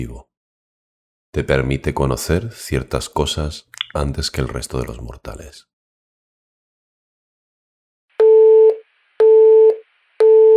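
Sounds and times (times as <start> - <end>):
speech: 0.0 - 0.3, 1.3 - 5.7
telephone line tone pulses with no signal: 8.2 - 10.5.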